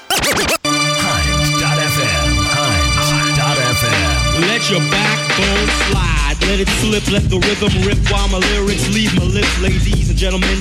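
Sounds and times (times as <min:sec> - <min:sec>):
rapid turntable scratches: 0:00.0 - 0:00.6
loud hip hop beat with steady bass line: 0:00.0 - 0:10.5
speech: 0:04.7 - 0:10.5.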